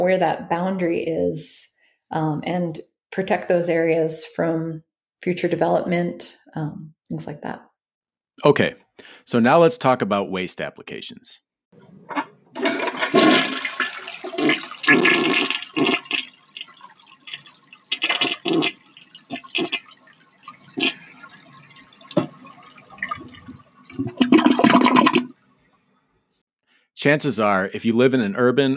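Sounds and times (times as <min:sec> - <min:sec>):
speech: 0:00.0 - 0:07.7, 0:08.4 - 0:13.5, 0:27.0 - 0:28.7
toilet flushing: 0:12.1 - 0:25.4.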